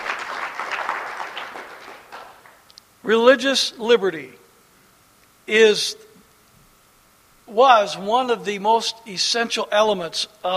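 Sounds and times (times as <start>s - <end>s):
crowd applauding: 0.0s - 2.6s
speech: 3.0s - 4.4s, 5.5s - 6.0s, 7.5s - 10.5s.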